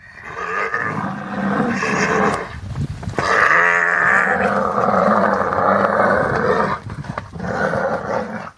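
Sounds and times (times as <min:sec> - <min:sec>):
mother giraffe growling defending calf from lions: 0:00.0 - 0:02.5, 0:03.2 - 0:08.5.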